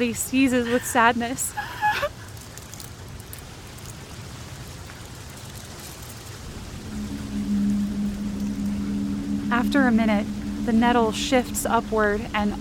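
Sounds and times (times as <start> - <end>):
speech: 0.0 - 2.1, 9.6 - 12.5
heavy rain pouring down: 0.6 - 12.5
low humming drone: 6.5 - 12.5.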